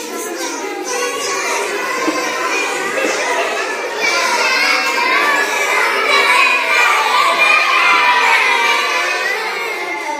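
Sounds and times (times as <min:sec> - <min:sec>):
laughter: 0:00.0 - 0:09.8
guitar: 0:00.0 - 0:10.1.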